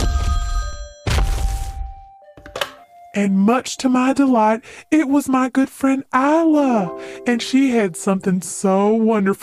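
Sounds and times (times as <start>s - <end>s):
telephone bell ringing: 0.0s - 1.1s
speech: 3.2s - 9.4s.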